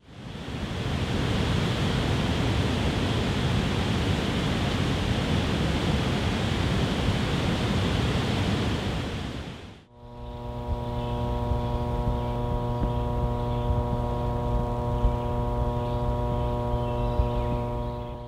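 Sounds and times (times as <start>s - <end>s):
roar of rushing water through a hydroelectric dam: 0.1s - 9.9s
electric power lines buzzing: 9.9s - 18.2s.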